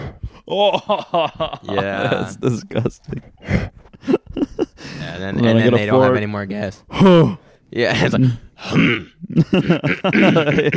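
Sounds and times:
speech: 0:00.5 - 0:04.2, 0:05.0 - 0:10.7
laughter: 0:00.5 - 0:05.2, 0:09.2 - 0:10.7
person vocally imitating throat clearing with a gravelly gurgling rasp: 0:08.6 - 0:10.7.

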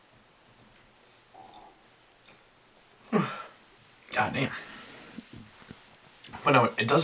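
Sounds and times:
person yawning: 0:03.1 - 0:03.6
speech: 0:04.2 - 0:04.6, 0:06.5 - 0:07.0.

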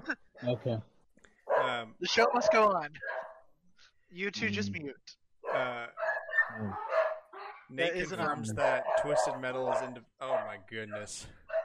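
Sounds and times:
speech: 0:00.4 - 0:00.9, 0:01.7 - 0:03.1, 0:04.1 - 0:05.9, 0:06.5 - 0:06.9, 0:07.7 - 0:11.4
dogs barking and yowling: 0:01.5 - 0:03.5, 0:05.4 - 0:11.6.

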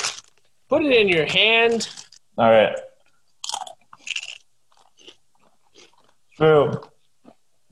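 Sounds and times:
speech: 0:00.7 - 0:02.9, 0:06.4 - 0:06.9
person chewing crunchy nacho cheese tortilla chips: 0:03.4 - 0:07.4.

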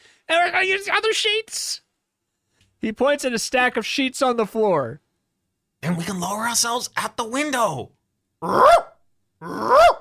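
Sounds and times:
speech: 0:00.3 - 0:01.8, 0:02.8 - 0:05.0, 0:05.8 - 0:09.9
dog barking and growling: 0:08.4 - 0:09.9.

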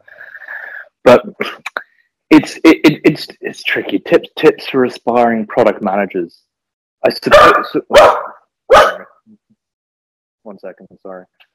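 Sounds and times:
speech: 0:01.1 - 0:01.6, 0:02.4 - 0:09.4, 0:10.4 - 0:11.5
dog barking: 0:07.3 - 0:09.2.

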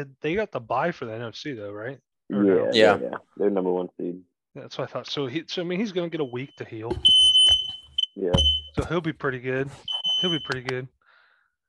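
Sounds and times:
speech: 0:00.0 - 0:11.0
high piercing smoke alarm beeping: 0:06.3 - 0:08.8, 0:09.9 - 0:10.7.

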